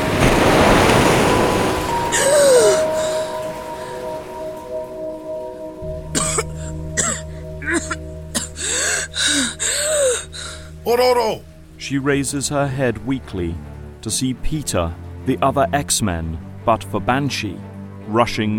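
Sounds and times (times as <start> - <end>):
surge of rushing water: 0.0 - 17.7
person gasping and coughing in short ragged breaths: 6.1 - 10.7
speech: 10.9 - 18.5.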